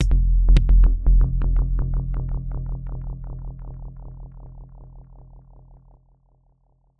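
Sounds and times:
dark resonant kick with mechanical reverberator: 0:00.0 - 0:05.5.

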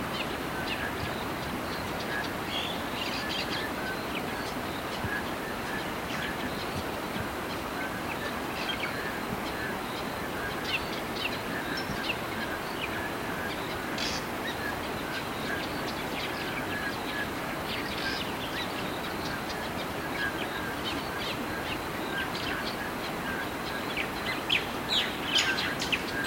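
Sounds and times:
calm waterfall: 0:00.0 - 0:26.2
varied gentle pleasant birdsong: 0:00.0 - 0:26.2.

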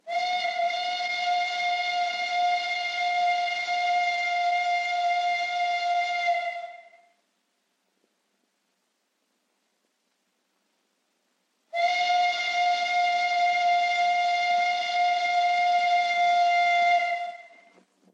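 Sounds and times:
long English train whistle: 0:00.0 - 0:07.2, 0:11.7 - 0:17.8.

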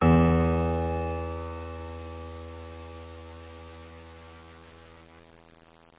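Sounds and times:
piano: 0:00.0 - 0:05.4.

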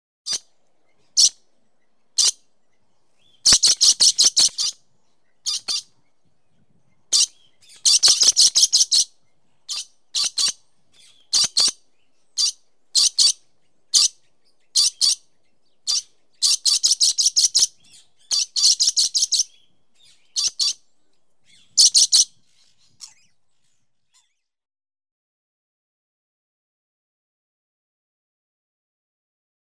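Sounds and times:
lory parrot calling: 0:01.2 - 0:01.4, 0:02.2 - 0:02.4, 0:03.4 - 0:04.8, 0:05.4 - 0:05.9, 0:07.1 - 0:09.1, 0:09.7 - 0:11.8, 0:12.4 - 0:15.2, 0:15.9 - 0:20.8, 0:21.5 - 0:22.3.

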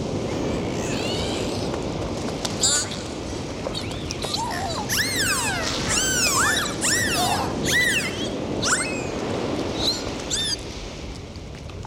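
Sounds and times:
constant rush of waves: 0:00.0 - 0:11.3
dolphin whistles: 0:03.8 - 0:09.2, 0:09.8 - 0:10.6.

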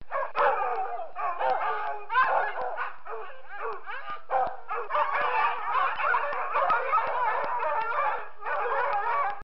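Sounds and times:
police dog: 0:00.1 - 0:09.4.

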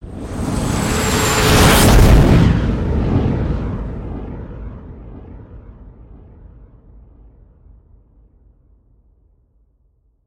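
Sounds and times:
meteorite impact hit effect: 0:01.0 - 0:06.2.

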